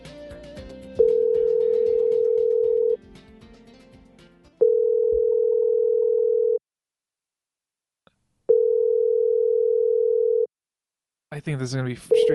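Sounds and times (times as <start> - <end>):
music: 0.0 - 4.7
telephone tone while calling a hotel: 1.0 - 3.0, 4.6 - 6.6, 8.5 - 10.5, 12.1 - 12.3
speech: 11.4 - 12.3.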